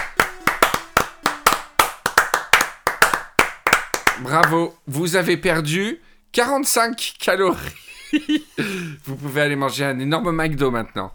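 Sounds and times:
hands clapping to applaud the end of a run: 0:00.0 - 0:04.6
speech: 0:04.2 - 0:11.1
laughter: 0:07.6 - 0:08.9.

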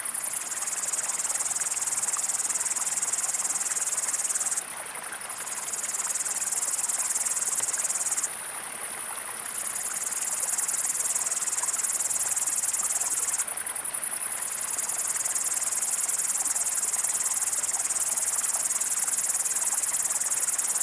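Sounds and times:
Tettigonia cantans and Tettigonia viridissima bush crickets singing: 0:00.0 - 0:20.8.

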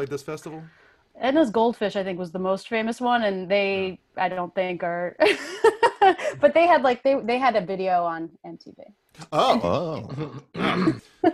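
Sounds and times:
speech: 0:00.0 - 0:11.3
person clearing throat: 0:09.3 - 0:11.1.

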